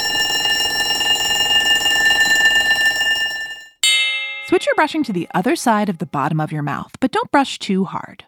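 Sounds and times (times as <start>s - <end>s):
school bell ringing: 0.0s - 5.6s
speech: 4.5s - 8.2s.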